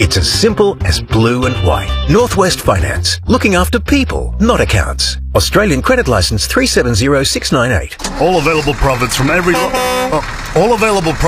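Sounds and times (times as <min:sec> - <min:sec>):
speech: 0:00.0 - 0:11.2
car horn blast: 0:09.2 - 0:10.5.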